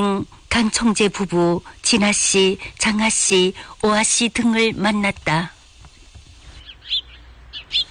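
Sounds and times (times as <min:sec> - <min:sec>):
speech: 0:00.0 - 0:05.6
birds chirping with high tweets: 0:06.4 - 0:07.8.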